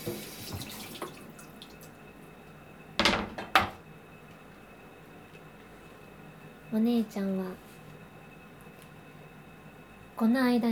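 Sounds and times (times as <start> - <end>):
running tap water rinsing a cutting board: 0.0 - 2.0
speech: 6.7 - 7.7, 10.2 - 10.7.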